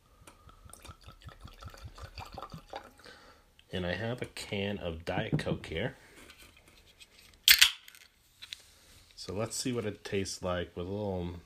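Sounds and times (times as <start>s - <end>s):
whiskey glugging from a bottle into a glass: 0.5s - 3.0s
speech: 3.7s - 6.0s, 9.3s - 11.4s.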